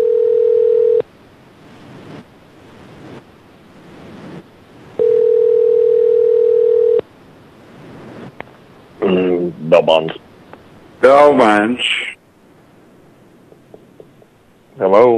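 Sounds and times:
telephone line tone from a pay phone: 0.0s - 1.0s, 5.0s - 7.0s
faint hiss: 1.0s - 15.1s
speech: 11.3s - 12.1s.

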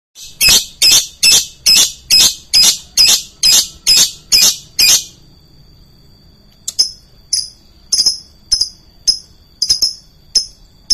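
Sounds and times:
lovebird shrill squawking calls: 0.2s - 5.1s.

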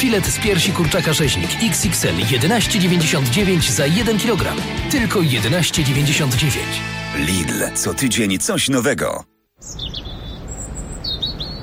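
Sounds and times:
speech: 0.0s - 10.0s
small birds chirping in spring: 9.6s - 11.6s.

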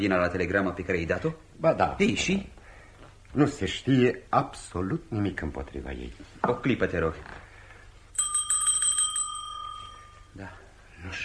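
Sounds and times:
speech: 0.0s - 2.6s, 3.3s - 7.4s, 10.4s - 11.2s
small hand bell rung to summon a servant: 8.1s - 10.4s.

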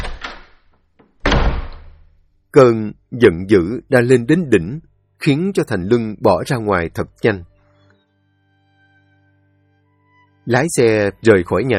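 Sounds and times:
door slammed shut at home: 0.0s - 2.1s
speech: 2.5s - 7.5s, 10.4s - 11.7s.

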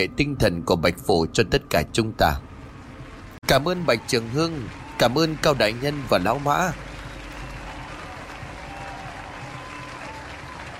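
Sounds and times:
speech: 0.0s - 2.5s, 3.4s - 6.8s
crowd cheering at a feast: 3.4s - 10.7s
crowd clapping at a feast: 3.5s - 10.7s.

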